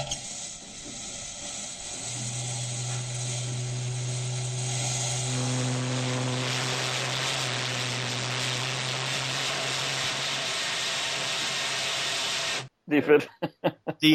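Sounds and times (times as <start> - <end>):
rush of hissing steam: 0.0 - 12.7
feeble steam ship's whistle wheezing blast: 1.8 - 12.7
speech: 12.9 - 14.1
laughter: 13.0 - 14.1.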